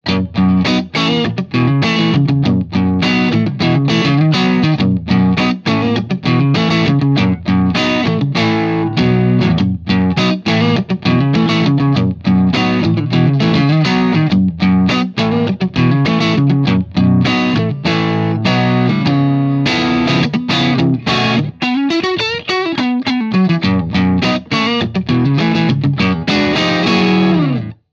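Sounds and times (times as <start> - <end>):
blues music: 0.0 - 27.9.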